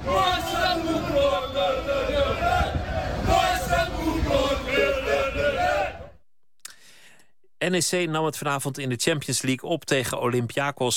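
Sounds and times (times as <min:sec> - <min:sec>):
football stadium crowd roaring and chanting: 0:00.0 - 0:06.2
speech: 0:07.7 - 0:10.9.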